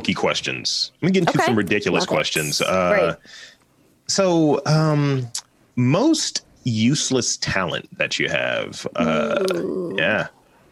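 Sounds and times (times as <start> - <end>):
speech: 0.0 - 10.4
loud drawn-out throaty belch: 9.0 - 9.9.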